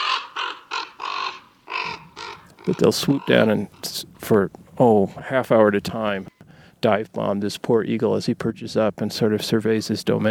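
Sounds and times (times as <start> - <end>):
raven croaking while flying over near a golden eagle's cliff nest: 0.0 - 6.7
speech: 2.6 - 10.2.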